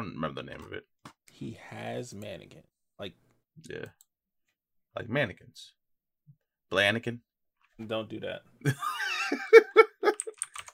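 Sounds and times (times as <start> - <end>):
speech: 0.0 - 4.1, 5.0 - 5.8, 6.7 - 9.8
typing on a clicky computer keyboard: 10.1 - 10.7.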